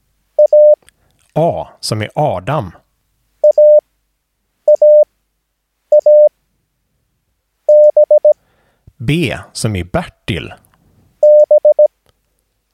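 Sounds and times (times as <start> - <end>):
Morse code beeps on a single steady tone: 0.4 - 0.8, 3.4 - 3.8, 4.7 - 5.1, 5.9 - 6.3, 7.7 - 8.4, 11.2 - 11.9
speech: 1.4 - 2.8, 9.1 - 10.6.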